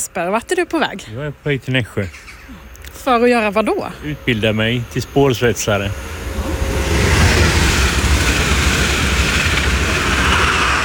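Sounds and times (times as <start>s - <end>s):
speech: 0.1s - 6.2s
train passing on railway tracks: 3.0s - 10.8s.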